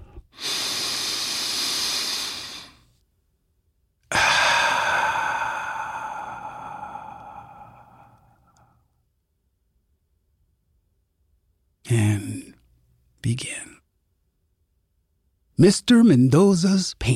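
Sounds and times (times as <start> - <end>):
slow deep human breath: 0.0 - 2.9, 4.1 - 9.0
speech: 13.3 - 13.7, 15.6 - 17.1.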